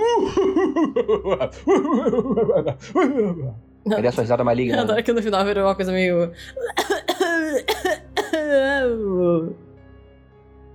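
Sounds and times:
speech: 0.2s - 9.6s
person coughing harshly: 6.6s - 8.6s.

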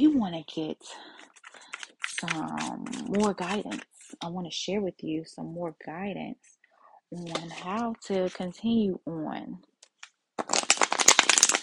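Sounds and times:
speech: 0.0s - 1.2s, 2.2s - 9.7s
deck of cards being shuffled: 1.0s - 4.2s, 7.2s - 8.5s, 9.9s - 11.6s.

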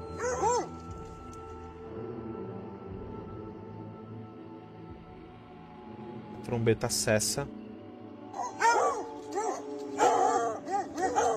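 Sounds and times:
dogs barking and yelping: 0.0s - 0.9s, 8.3s - 11.3s
speech: 6.4s - 7.6s.

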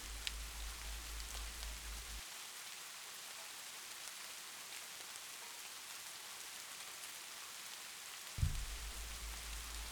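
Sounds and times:
soft rain pattering: 0.0s - 9.9s
thump: 8.4s - 9.1s.

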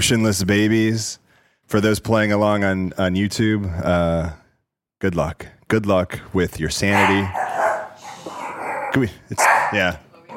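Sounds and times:
speech: 0.0s - 4.4s, 5.0s - 7.4s, 9.0s - 10.0s
dog barking: 6.9s - 10.3s.

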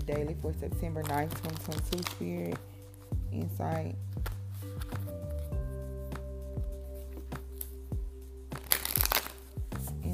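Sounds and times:
speech: 0.1s - 5.0s
soft steady musical drone: 0.3s - 10.1s
oracle cards being shuffled and handled: 1.0s - 3.1s, 4.1s - 5.6s, 8.6s - 10.1s.

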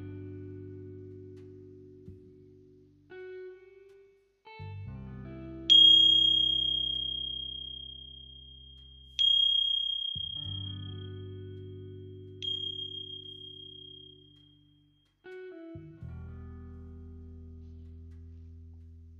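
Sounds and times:
meditation bell ringing: 5.7s - 11.2s, 12.4s - 14.4s.

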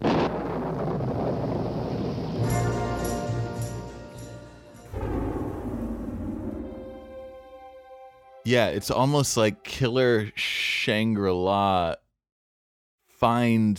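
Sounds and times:
rolling rumble of thunder: 0.0s - 3.6s, 4.8s - 7.6s
speech: 8.5s - 12.0s, 13.2s - 13.7s.

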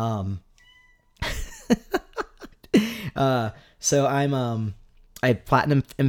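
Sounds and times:
speech: 0.0s - 0.5s, 1.7s - 2.0s, 2.8s - 6.0s
cat meowing: 0.6s - 1.2s
laughter: 1.2s - 2.8s.

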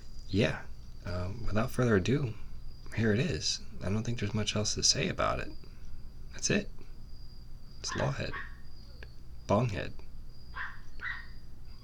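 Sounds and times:
faint high insect-like whine: 0.0s - 11.8s
steady low hum: 0.0s - 11.8s
speech: 0.3s - 5.6s, 6.3s - 6.8s, 7.8s - 8.5s, 9.5s - 10.0s
dog barking: 7.9s - 8.6s, 10.5s - 11.4s.

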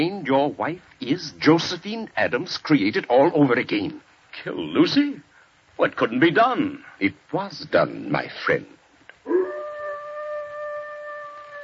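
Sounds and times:
speech: 0.0s - 5.2s, 5.8s - 8.8s
dog howling: 9.2s - 11.6s.

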